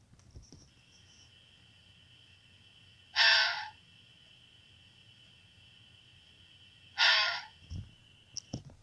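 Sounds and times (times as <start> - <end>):
faint steady insect hum at night: 0.0 - 8.8
female fox screaming at night: 3.1 - 3.8, 7.0 - 7.5.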